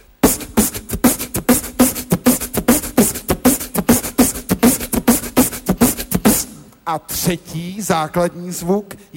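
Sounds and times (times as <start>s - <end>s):
snare drum beatboxed with the mouth: 0.0s - 7.3s
speech: 6.9s - 9.1s.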